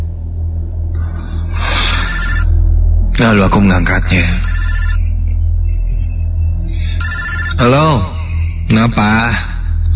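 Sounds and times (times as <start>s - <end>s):
constant low rumble: 0.0s - 9.9s
telephone ringing with an incoming call: 1.9s - 2.6s, 4.3s - 5.2s, 7.0s - 7.7s
speech: 3.2s - 4.5s, 7.6s - 8.1s, 8.7s - 9.5s.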